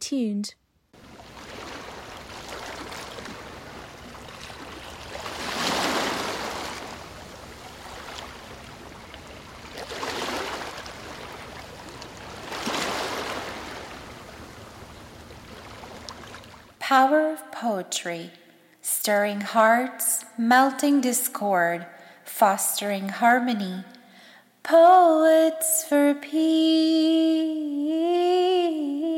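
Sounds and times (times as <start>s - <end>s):
speech: 0.1s - 0.6s, 16.9s - 18.4s, 19.1s - 23.9s, 24.6s - 29.0s
sea waves splashing on the shore: 1.0s - 16.8s.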